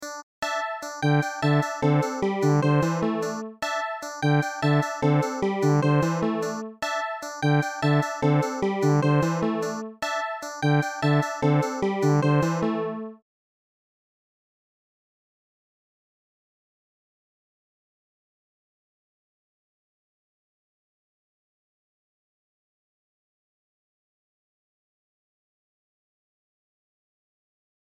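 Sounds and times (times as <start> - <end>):
chiptune song: 0.0 - 13.2.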